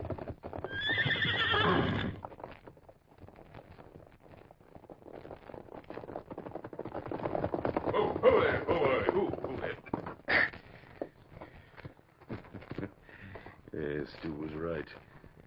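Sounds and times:
stallion galloping hoofbeats: 0.0s - 15.4s
stallion neighing in a long shrill whinny: 0.7s - 2.2s, 7.9s - 10.7s.

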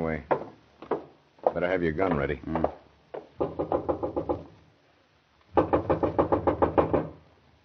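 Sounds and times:
speech: 0.0s - 0.3s, 1.6s - 2.8s
knocking on a wooden house door: 0.3s - 4.5s, 5.6s - 7.2s.

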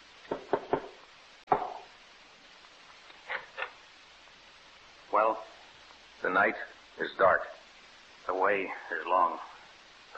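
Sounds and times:
knocking on the wooden door of a stone house at night: 0.3s - 1.9s
speech: 5.2s - 5.6s, 6.2s - 7.6s, 8.3s - 9.5s.

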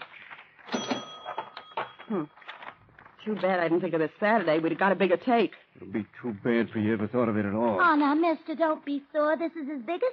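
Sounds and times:
cash register drawer clattering open: 0.2s - 3.4s
speech: 2.1s - 2.4s, 3.2s - 10.1s.

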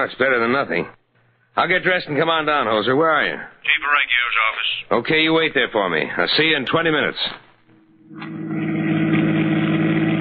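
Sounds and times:
speech: 0.0s - 1.0s, 1.6s - 7.4s, 8.1s - 8.5s
car engine droning while driving: 8.1s - 10.1s.

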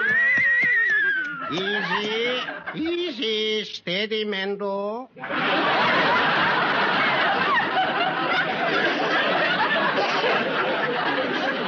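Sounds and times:
horse whinnying: 0.0s - 1.6s
laughter: 0.0s - 3.4s, 5.2s - 11.6s
speech: 1.5s - 6.7s.

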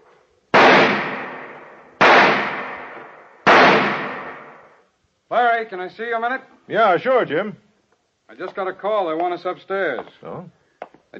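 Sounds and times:
pistol shots at an indoor firing range in an office building basement: 0.5s - 4.8s
speech: 5.3s - 7.6s, 8.3s - 11.1s.

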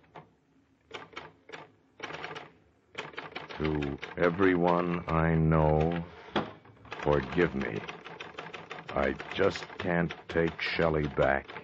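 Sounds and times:
portable typewriter typing on paper, resting in a lap: 2.0s - 6.1s, 6.9s - 11.6s
speech: 3.6s - 6.2s, 7.0s - 8.0s, 9.0s - 11.6s.

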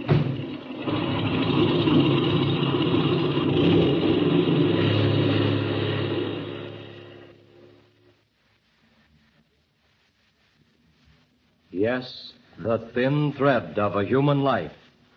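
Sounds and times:
propeller airplane engine running up before takeoff: 0.0s - 7.4s
speech: 12.0s - 14.8s.

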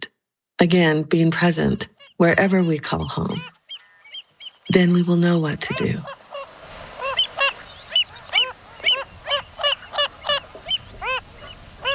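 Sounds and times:
speech: 0.6s - 3.6s, 4.7s - 6.2s
Wilson's phalarope nasal honking calls: 1.6s - 11.9s.

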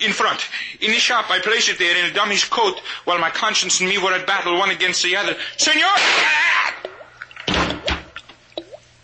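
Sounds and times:
speech: 0.0s - 6.6s
faucet dripping with hollow plinks: 6.8s - 9.0s.

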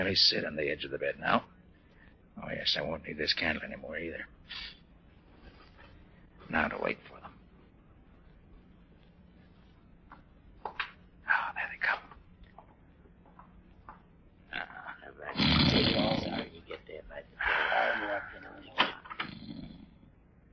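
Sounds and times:
speech: 0.0s - 1.6s, 2.4s - 4.8s, 6.5s - 7.2s
man's short breathy sputters: 14.5s - 20.1s
man snoring loudly and raspily in his sleep: 15.3s - 16.5s, 19.2s - 20.0s.

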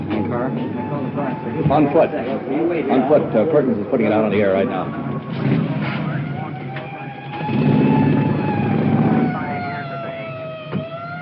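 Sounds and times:
police motorcycle siren wailing: 0.0s - 11.2s
speech: 0.3s - 5.8s
police motorcycle engine roar pulling away: 3.2s - 11.2s.

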